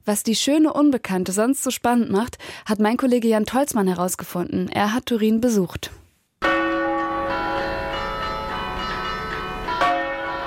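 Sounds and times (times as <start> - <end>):
speech: 0.0 - 6.0
cathedral bells ringing over a city square in Turin Italy: 6.4 - 10.4.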